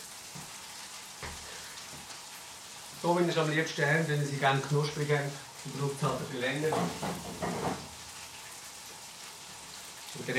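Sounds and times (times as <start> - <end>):
Spätzle frying in butter in a frying pan: 0.0 - 10.3
speech: 3.0 - 7.9
faint soft knocks: 6.7 - 7.9.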